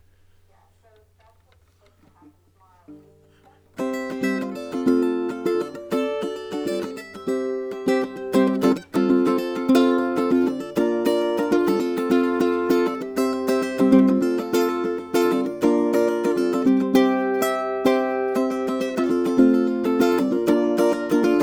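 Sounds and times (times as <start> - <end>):
strumming with echo: 2.9 - 21.4.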